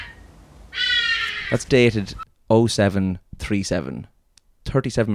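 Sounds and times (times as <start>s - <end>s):
bird calling harshly in the morning: 0.9s - 2.6s
speech: 1.5s - 4.1s, 4.7s - 5.1s.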